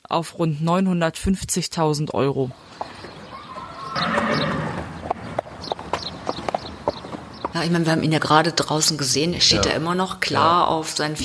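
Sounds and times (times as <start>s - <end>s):
speech: 0.1s - 2.8s, 7.6s - 11.2s
horse hooves clip-clopping across a hard surface: 2.4s - 10.5s
20-year-old horse whinnying: 2.5s - 5.2s.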